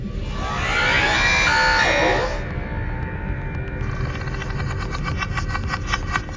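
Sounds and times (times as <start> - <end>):
low rumbling background: 0.0 - 6.3
video game alien creature cry: 0.3 - 2.4.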